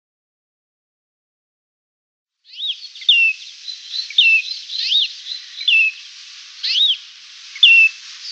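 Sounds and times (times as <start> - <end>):
great grey shrike slurred whistles and chatter: 2.5 - 8.2.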